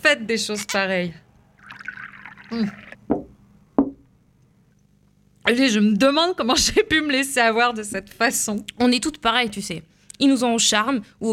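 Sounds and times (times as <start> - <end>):
speech: 0.1 - 1.2, 2.5 - 3.2, 5.5 - 11.3
cognac glugging into a glass: 1.6 - 3.3
glass knocking on a tabletop: 3.1 - 4.0.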